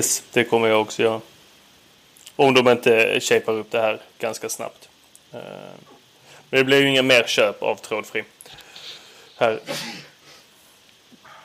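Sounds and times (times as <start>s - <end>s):
speech: 0.0s - 1.4s, 2.4s - 8.6s, 9.4s - 10.1s
faint breathy noises: 6.1s - 6.5s, 8.4s - 9.4s
sneeze: 9.6s - 10.2s.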